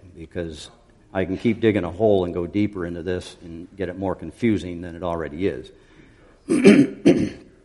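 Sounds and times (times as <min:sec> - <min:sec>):
speech: 0:00.2 - 0:05.9, 0:06.5 - 0:07.4
person clearing throat: 0:06.5 - 0:07.6.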